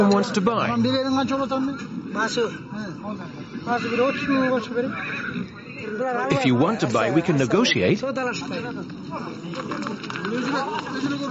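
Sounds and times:
people's voices: 0:00.0 - 0:11.2
speech: 0:00.0 - 0:11.2
horse neighing and whinnying: 0:03.6 - 0:06.0.

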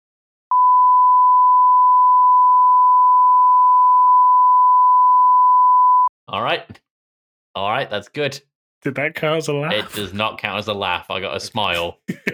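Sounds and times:
censorship bleep tone: 0:00.5 - 0:06.1
speech: 0:06.4 - 0:06.9, 0:07.6 - 0:12.3.

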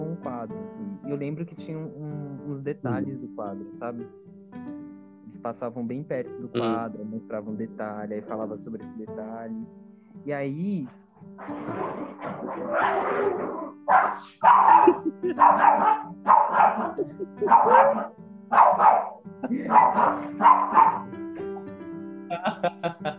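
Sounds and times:
speech: 0:01.1 - 0:04.8, 0:05.4 - 0:21.2, 0:22.3 - 0:23.1
laughter: 0:02.9 - 0:03.2, 0:06.6 - 0:06.9, 0:14.6 - 0:18.1, 0:19.4 - 0:20.4, 0:22.3 - 0:23.1
several dogs barking: 0:11.4 - 0:21.6.

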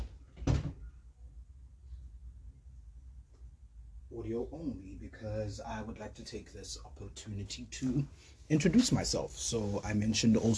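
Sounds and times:
faint quiet room noise: 0:00.0 - 0:10.5
soft thud of a door opened to let a cat out: 0:00.4 - 0:00.8
speech: 0:04.2 - 0:10.5.

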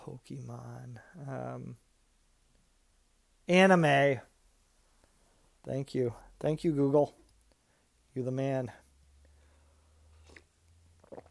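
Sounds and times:
speech: 0:00.0 - 0:01.9, 0:03.5 - 0:04.3, 0:05.6 - 0:07.2, 0:08.2 - 0:08.8
slurp of hot coffee being sipped: 0:10.1 - 0:11.2
soft gulp of swallowing: 0:10.1 - 0:11.2.

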